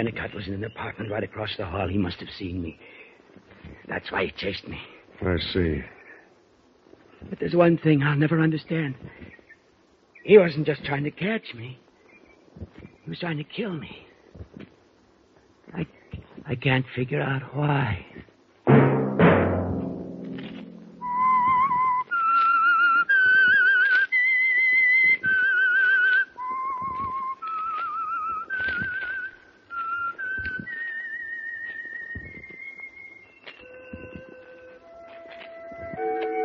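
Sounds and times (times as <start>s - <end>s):
speech: 0.0s - 6.0s, 7.2s - 9.4s, 10.2s - 11.8s, 12.6s - 14.8s, 15.7s - 18.3s
loud low chord: 18.7s - 21.4s
solo whistler carrying a slow eerie melody of sustained notes: 21.0s - 36.4s.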